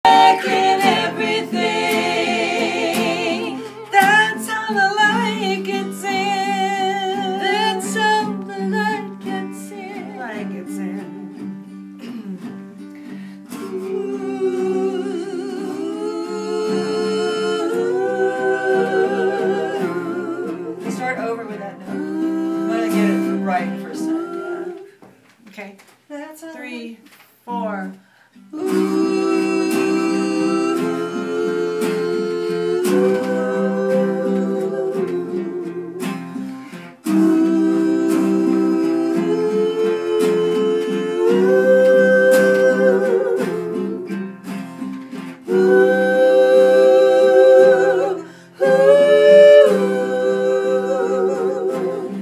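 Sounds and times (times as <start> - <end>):
anthem-style voices singing ooh: 0.0 - 11.4, 12.2 - 21.2, 21.8 - 25.0, 28.5 - 52.1.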